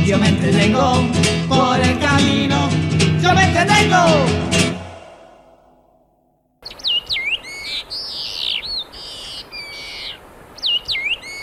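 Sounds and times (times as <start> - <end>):
speech: 0.1 - 4.7
long-tailed meadowlark whistled calls: 6.6 - 11.4.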